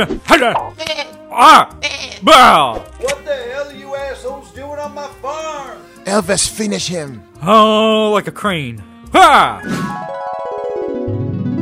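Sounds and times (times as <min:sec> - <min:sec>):
speech: 0:00.0 - 0:10.2
goat bleating: 0:00.7 - 0:02.3.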